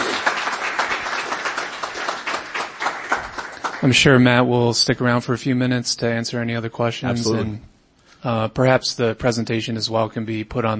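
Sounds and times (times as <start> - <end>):
crowd applauding: 0.0 - 4.2
speech: 3.8 - 10.7.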